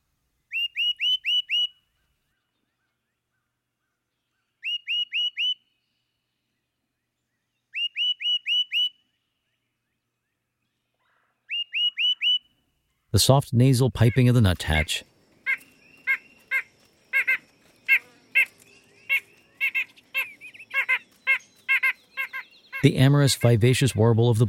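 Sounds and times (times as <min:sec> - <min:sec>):
great crested titmouse clear sweet whistle: 0:00.5 - 0:01.8, 0:04.6 - 0:05.6, 0:07.7 - 0:09.0, 0:11.5 - 0:12.5, 0:15.5 - 0:22.9
speech: 0:13.2 - 0:15.1, 0:22.8 - 0:24.4.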